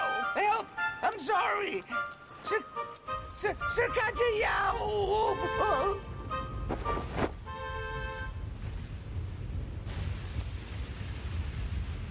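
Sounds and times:
metallic jingling of gold coins: 0.2 - 6.7, 9.9 - 11.7
speech: 0.6 - 6.1
low steady rumble: 3.2 - 12.0.

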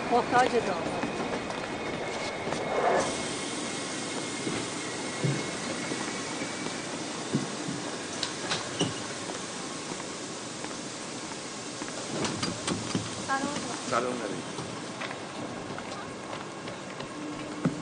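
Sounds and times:
train to Tehran rolling along rails: 0.0 - 17.8
speech: 0.1 - 1.1, 14.0 - 14.6
faint metallic clanks and squeaks of train: 8.5 - 9.1.

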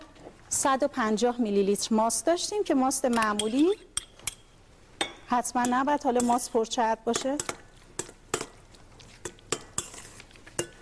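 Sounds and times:
speech: 0.5 - 3.9, 5.3 - 7.6
metal utensil stirring and clinking in a bowl: 3.1 - 8.5.

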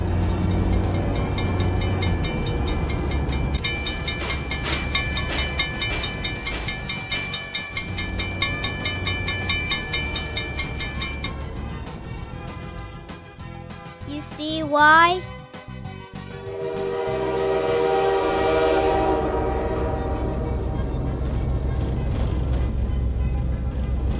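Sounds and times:
train wheels clattering over the tracks: 0.0 - 12.6
train rumbling past a railroad crossing: 0.0 - 13.8, 16.2 - 24.1
railroad crossing bell clanging: 0.1 - 12.6.

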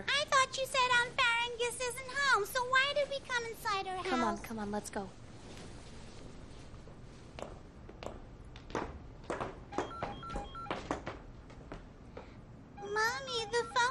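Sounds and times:
speech: 0.0 - 5.2
house telephone ringing with a warbling electronic trill: 9.7 - 10.9, 12.8 - 13.8.

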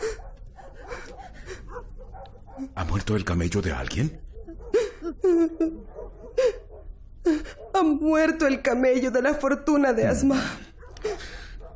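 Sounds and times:
dogs barking: 0.0 - 3.0, 4.1 - 8.0, 10.7 - 11.7
speech: 2.7 - 4.3, 5.3 - 6.0, 7.8 - 11.3.

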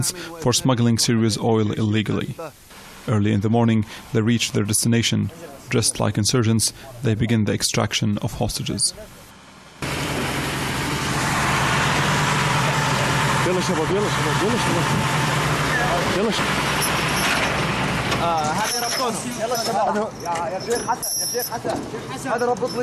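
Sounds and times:
speech: 0.0 - 9.3, 13.5 - 15.3, 16.2 - 16.7, 18.2 - 22.8
large cattle transport truck engine idling: 9.0 - 22.8.

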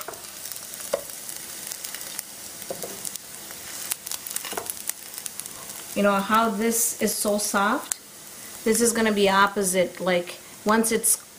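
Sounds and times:
small pops and crackles of frying food: 0.0 - 6.0, 7.8 - 8.1
food frying in a pan: 0.0 - 11.3
speech: 6.0 - 8.0, 8.6 - 11.2.

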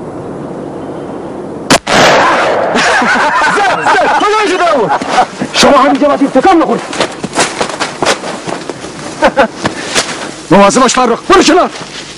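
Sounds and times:
gunshots being fired: 1.7 - 3.1
laughter: 2.7 - 5.6, 9.1 - 9.8
speech: 5.7 - 7.1, 10.5 - 12.0.

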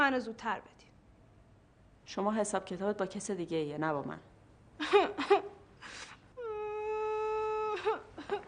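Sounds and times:
speech: 0.1 - 0.9, 2.1 - 6.1
woman crying and wailing: 4.8 - 5.6, 6.4 - 8.4.

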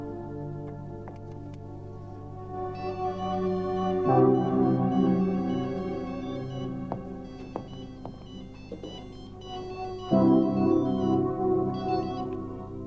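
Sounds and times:
melodic phone ringtone of looping electronic sustained tones: 2.7 - 12.6.

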